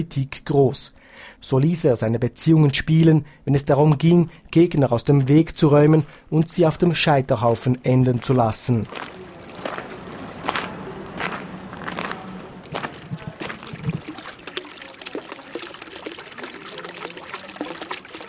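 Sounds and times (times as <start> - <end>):
speech: 0.0 - 9.8
water splashing and trickling from a courtyard fountain in Geneva: 8.2 - 18.2.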